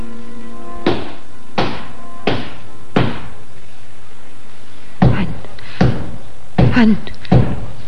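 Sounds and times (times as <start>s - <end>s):
faint low hum: 0.0s - 7.8s
heavy knocking on a wooden apartment door: 0.9s - 3.3s, 5.0s - 7.8s
speech: 6.8s - 7.2s.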